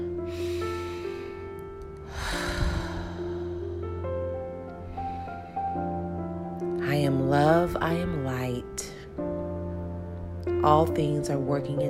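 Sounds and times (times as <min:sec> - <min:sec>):
slow deep breathing in and out: 0:00.0 - 0:06.6
soft sustained musical drone: 0:00.0 - 0:11.8
speech: 0:06.9 - 0:08.8, 0:10.6 - 0:11.8.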